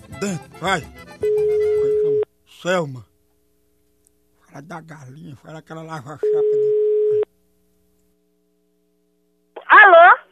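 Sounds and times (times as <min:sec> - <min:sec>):
speech: 0:00.2 - 0:01.6, 0:02.6 - 0:03.1, 0:04.6 - 0:07.2
telephone busy tone after a dropped call: 0:01.2 - 0:02.3, 0:06.2 - 0:07.3
faint low hum: 0:01.3 - 0:10.3.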